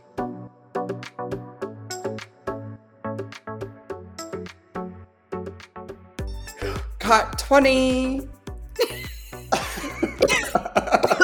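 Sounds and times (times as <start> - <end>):
speech: 1.0 - 1.5, 7.1 - 9.0
laughter: 8.8 - 11.2
person coughing: 9.6 - 11.2.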